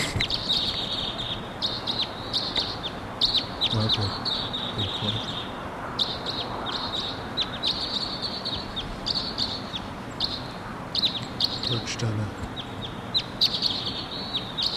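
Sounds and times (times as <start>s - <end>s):
outdoor hiss: 0.0s - 14.7s
wild crossbill calls: 0.0s - 14.7s
low murmurs: 3.7s - 5.4s
speech: 3.8s - 5.4s, 11.7s - 12.5s.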